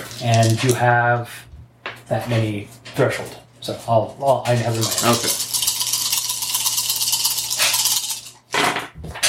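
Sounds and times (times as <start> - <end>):
speech: 0.2 - 1.5, 2.1 - 5.4
dice rattling during a tabletop role-playing game: 4.5 - 8.4
dice falling off a table: 4.6 - 9.2.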